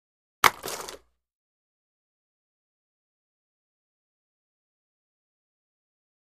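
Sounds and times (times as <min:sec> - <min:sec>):
roller blade drop while roller blading: 0:00.4 - 0:01.0.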